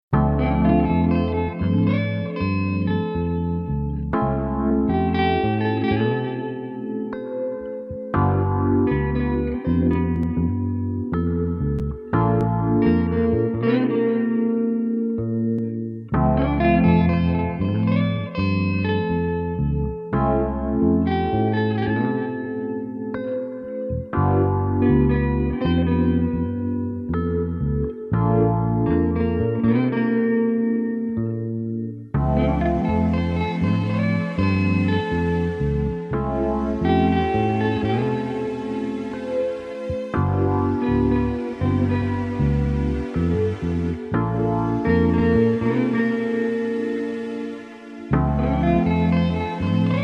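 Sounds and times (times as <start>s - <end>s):
432 Hz chill guitar music: 0.1s - 50.0s.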